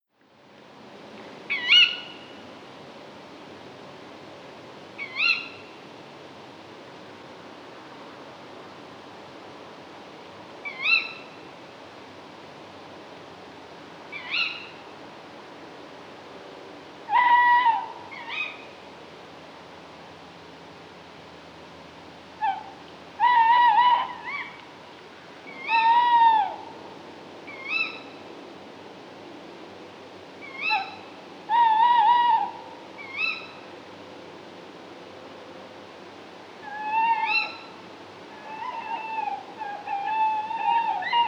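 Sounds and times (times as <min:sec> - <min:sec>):
Tawny Owl birdsong: 0:01.5 - 0:02.4, 0:05.0 - 0:05.8, 0:10.6 - 0:11.4, 0:14.1 - 0:14.8, 0:17.1 - 0:18.8, 0:22.4 - 0:24.7, 0:25.4 - 0:26.8, 0:27.5 - 0:28.2, 0:30.4 - 0:33.7, 0:36.6 - 0:41.2.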